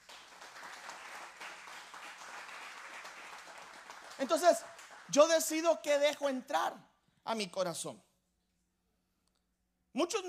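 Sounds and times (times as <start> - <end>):
applause from a large crowd: 0.0 - 5.6
speech: 4.2 - 8.1, 10.0 - 10.2.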